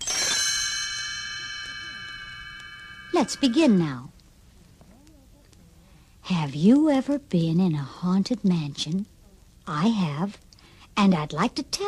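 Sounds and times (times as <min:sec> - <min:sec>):
tiny bells chime as read-along storybook page-turn signal: 0:00.0 - 0:04.0
speech: 0:03.2 - 0:04.1, 0:06.3 - 0:09.1, 0:09.7 - 0:10.4, 0:11.0 - 0:11.8.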